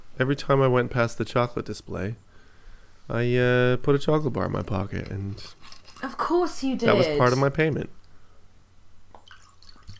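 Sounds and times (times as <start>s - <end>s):
low hum: 0.0s - 9.9s
speech: 0.2s - 2.3s, 3.1s - 8.0s
wine being poured into a glass: 9.1s - 9.9s.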